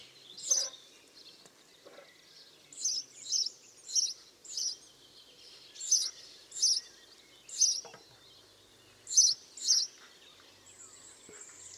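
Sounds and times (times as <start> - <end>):
house sparrow Passer domesticus chirps: 0.0 - 1.2, 1.8 - 11.7.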